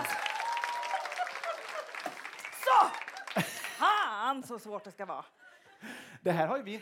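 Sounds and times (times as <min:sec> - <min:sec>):
cheers and whoops: 0:00.0 - 0:03.4
full crowd applauding: 0:00.0 - 0:04.2
speech: 0:04.4 - 0:06.8.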